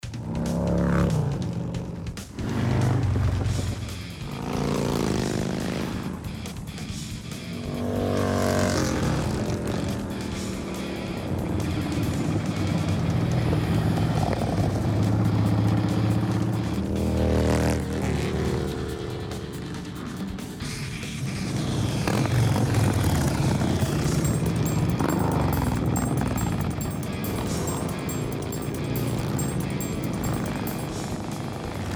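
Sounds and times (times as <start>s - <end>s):
motorcycles at a rally: 0.0s - 31.9s.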